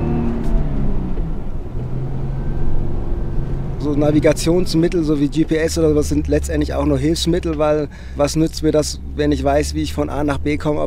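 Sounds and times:
Jeep engine revving on sand dunes: 0:00.0 - 0:10.8
speech: 0:03.8 - 0:10.8.

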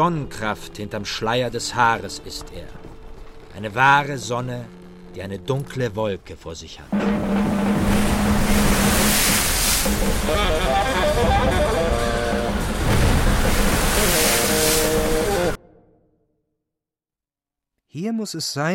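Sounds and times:
speech: 0:00.0 - 0:02.9, 0:03.6 - 0:07.6, 0:09.1 - 0:11.8, 0:18.0 - 0:18.7
sea water swirling in a whirlpool: 0:06.9 - 0:15.6
strong wind roaring over the sea: 0:07.0 - 0:15.6.

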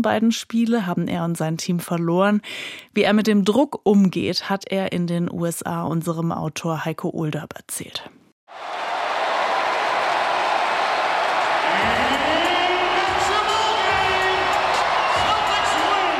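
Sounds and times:
speech: 0:00.0 - 0:08.8
huge arena crowd cheering and applauding: 0:08.5 - 0:16.1.

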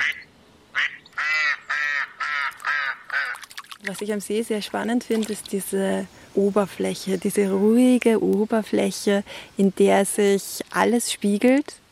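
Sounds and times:
ducks quacking on a small lake: 0:00.0 - 0:03.4
speech: 0:03.9 - 0:11.8.

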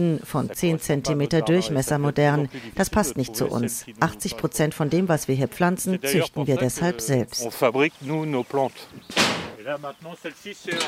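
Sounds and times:
speech: 0:00.0 - 0:10.8
glass greenhouse door pushed open: 0:09.1 - 0:09.6, 0:10.7 - 0:10.8.

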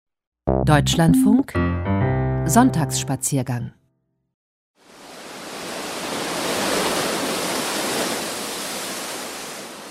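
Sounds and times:
speech: 0:00.7 - 0:03.8
Atlantic waves breaking on volcanic rocks: 0:04.9 - 0:09.9.

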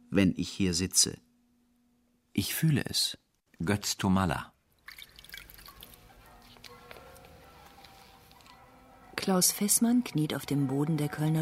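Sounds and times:
speech: 0:00.1 - 0:01.3, 0:02.4 - 0:04.5, 0:09.2 - 0:11.3
water poured from a jug trickling into a bowl: 0:04.7 - 0:06.7.

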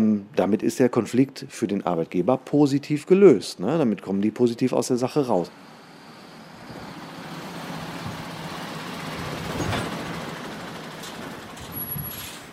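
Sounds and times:
speech: 0:00.3 - 0:05.7
trucks idling and moving at an industrial estate: 0:05.2 - 0:12.5
air brake hiss: 0:11.8 - 0:12.5.

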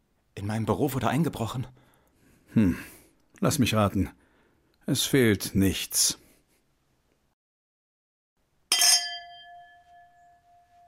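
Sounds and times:
speech: 0:00.4 - 0:01.8, 0:02.6 - 0:04.2, 0:04.9 - 0:06.2
glasses clinking in a toast: 0:08.7 - 0:10.8.

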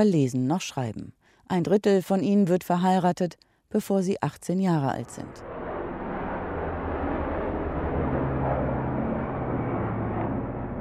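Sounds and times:
speech: 0:00.0 - 0:05.5
helicopters circling over Kabul, Afghanistan: 0:05.0 - 0:10.8.

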